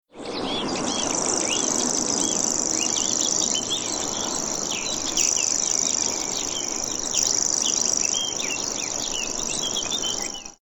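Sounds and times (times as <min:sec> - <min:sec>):
Feldschwirl song: 0:00.2 - 0:10.6.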